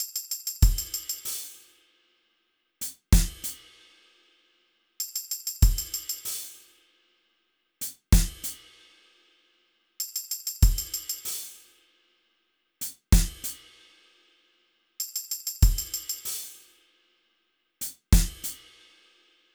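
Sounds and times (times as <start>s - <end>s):
drums: 0.0s - 1.8s, 2.8s - 4.2s, 5.0s - 6.8s, 7.8s - 9.2s, 10.0s - 11.8s, 12.8s - 14.2s, 15.0s - 16.8s, 17.8s - 19.3s.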